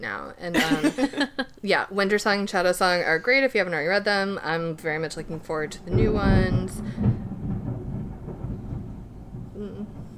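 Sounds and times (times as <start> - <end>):
speech: 0.0 - 7.1
long low roll of thunder: 3.8 - 10.1.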